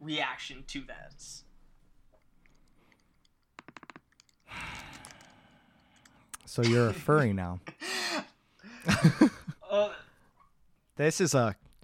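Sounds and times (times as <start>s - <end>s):
speech: 0.1s - 1.5s, 6.5s - 7.9s, 8.8s - 10.0s, 11.0s - 11.6s
crisp key clicks: 2.2s - 6.5s.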